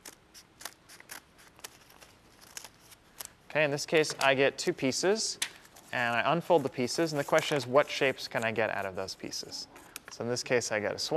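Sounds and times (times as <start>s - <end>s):
scissors snipping through folded paper: 0.0s - 3.3s
speech: 3.6s - 11.1s.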